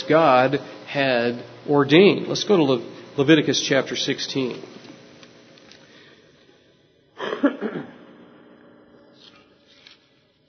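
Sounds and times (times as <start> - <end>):
speech: 0.1 - 4.8
ill person coughing and clearing throat: 7.2 - 8.1.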